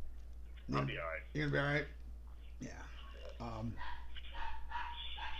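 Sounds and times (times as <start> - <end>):
speech: 0.7 - 2.0, 2.6 - 4.0
dogs barking: 3.4 - 5.3.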